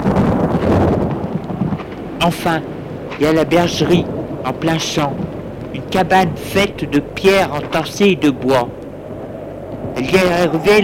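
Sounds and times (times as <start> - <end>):
deep low rumble: 0.0 - 10.8
gusting wind: 0.0 - 10.8
stormy downpour: 0.0 - 10.8
speech: 2.2 - 5.3, 5.9 - 8.8, 10.0 - 10.8.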